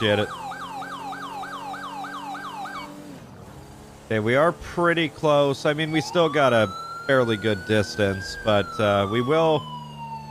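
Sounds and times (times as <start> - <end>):
speech: 0.0 - 0.4, 4.1 - 9.7
police car siren yelping: 0.0 - 3.1, 5.7 - 10.3
engine drone: 0.0 - 10.3.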